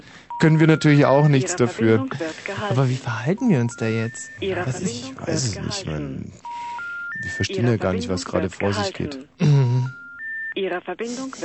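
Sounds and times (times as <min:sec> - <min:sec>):
speech: 0:00.4 - 0:06.5, 0:07.2 - 0:09.6, 0:10.6 - 0:11.4
steady electronic telephone keypad dialing tones: 0:03.2 - 0:04.8, 0:06.4 - 0:08.2, 0:09.6 - 0:10.6.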